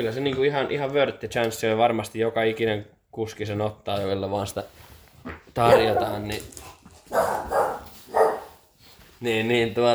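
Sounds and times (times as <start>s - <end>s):
speech: 0.0s - 7.6s, 9.2s - 9.9s
dog barking: 5.6s - 6.2s, 7.1s - 8.6s.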